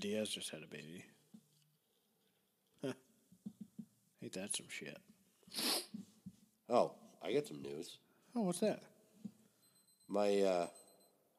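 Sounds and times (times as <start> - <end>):
speech: 0.0 - 1.2, 2.8 - 3.0, 4.2 - 5.9, 6.7 - 8.9, 10.1 - 10.8
watch beeping for incoming text message: 9.6 - 11.2.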